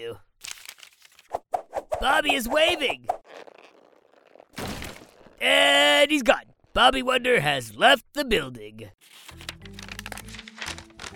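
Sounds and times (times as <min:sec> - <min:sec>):
folded paper note crinkling while being unfolded: 0:00.4 - 0:01.3, 0:03.2 - 0:05.4, 0:09.0 - 0:11.1
speech: 0:02.0 - 0:03.1, 0:05.4 - 0:09.4.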